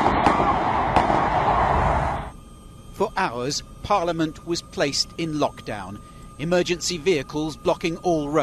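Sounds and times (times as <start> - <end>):
gunshots: 0.0 - 1.4
speech: 3.2 - 8.4.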